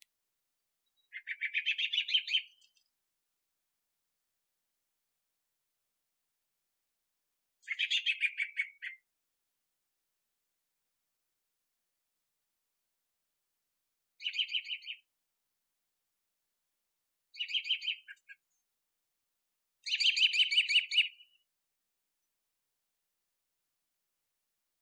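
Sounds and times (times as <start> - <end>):
birds: 0.6 - 3.0, 7.6 - 9.1, 14.2 - 15.1, 17.3 - 18.7, 19.8 - 21.5.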